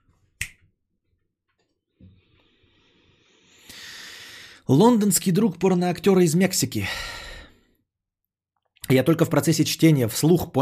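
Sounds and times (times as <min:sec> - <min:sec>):
finger snap: 0:00.4 - 0:00.7
speech: 0:04.7 - 0:07.2, 0:08.9 - 0:10.5.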